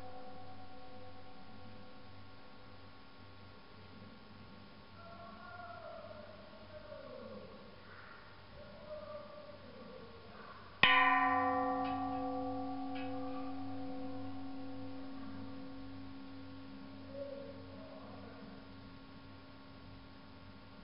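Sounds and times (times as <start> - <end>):
large Buddhist temple bell being struck on Mt. Emeishan near Leshan China: 0.0 - 2.4, 10.8 - 19.0.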